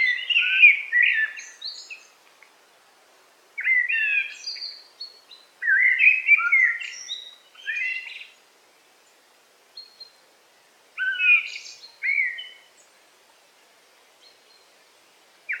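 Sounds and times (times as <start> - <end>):
Eurasian blackbird song of whistled notes and twitters in forest: 0.0 - 2.1, 3.6 - 8.4, 11.0 - 12.7.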